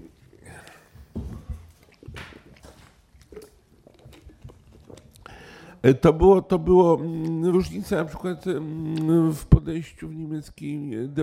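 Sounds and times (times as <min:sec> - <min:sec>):
small mouth clicks: 0:00.0 - 0:01.1, 0:01.8 - 0:05.8, 0:07.0 - 0:09.5
person sipping and swallowing water: 0:00.0 - 0:05.8
speech: 0:05.8 - 0:11.2.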